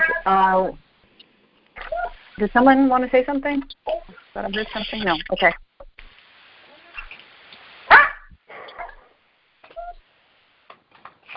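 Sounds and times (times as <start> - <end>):
speech: 0.2 - 0.8, 2.4 - 5.6
dog barking: 7.9 - 9.1.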